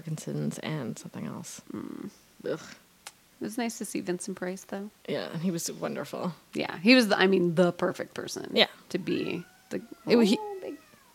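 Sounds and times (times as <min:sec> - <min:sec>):
speech: 0:00.0 - 0:02.8, 0:03.4 - 0:10.5
cat meowing loudly with rising wavering tone: 0:09.1 - 0:11.1.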